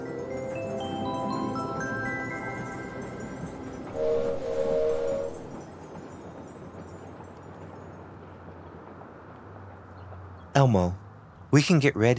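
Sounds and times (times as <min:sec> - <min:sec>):
cartoonish toy train rumbling with layered tonal hums: 0:00.0 - 0:07.7
bright two-note toy train whistle: 0:03.9 - 0:05.6
speech: 0:10.6 - 0:12.1.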